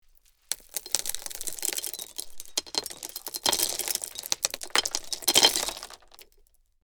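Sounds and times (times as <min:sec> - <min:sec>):
small gravel slowly pouring: 0:00.1 - 0:06.4.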